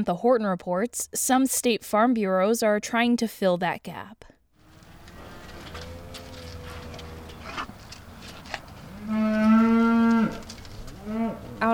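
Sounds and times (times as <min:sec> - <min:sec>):
speech: 0:00.0 - 0:04.3, 0:11.6 - 0:11.7
beef cow mooing at evening feeding on a family farm in northern Indiana: 0:04.6 - 0:11.7
soft farmyard noise: 0:04.6 - 0:11.7.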